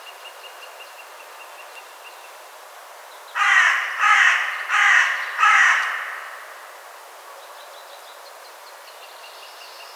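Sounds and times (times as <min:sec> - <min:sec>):
carrion crow cawing: 0:03.4 - 0:06.8.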